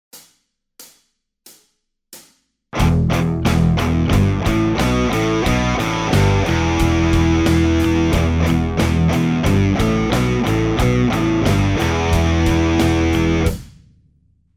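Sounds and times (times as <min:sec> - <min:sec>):
alternate picking guitar riff: 0:02.8 - 0:13.6.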